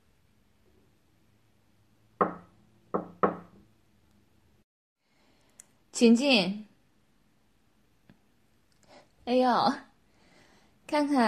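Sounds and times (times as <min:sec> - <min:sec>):
knocking on a door: 0:02.2 - 0:03.6
speech: 0:06.0 - 0:06.7, 0:09.3 - 0:09.9, 0:10.9 - 0:11.2.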